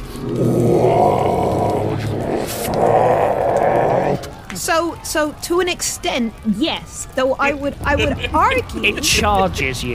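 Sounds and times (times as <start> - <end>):
speech: 0.2 - 0.5, 4.6 - 9.9
person imitating a monster's roar: 0.2 - 4.4.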